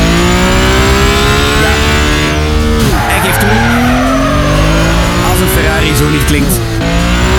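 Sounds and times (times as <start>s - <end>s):
loud Ferrari combustion engine revving through gear changes: 0.0s - 7.3s
tires squealing and skidding: 0.9s - 7.3s.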